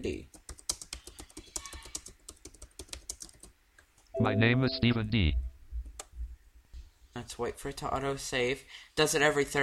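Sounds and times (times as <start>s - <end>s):
speech: 0.0s - 0.3s, 4.2s - 5.4s, 7.3s - 9.6s
typing on a computer keyboard: 0.1s - 3.6s.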